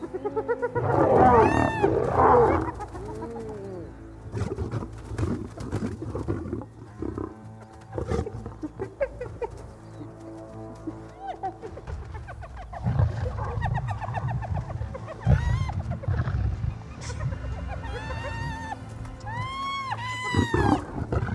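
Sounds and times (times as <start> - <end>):
chorus of whooping, cackling hyena calls and yelps: 0.0 - 4.5, 11.1 - 21.3
lion roaring and snarling: 0.8 - 8.6, 20.3 - 21.3.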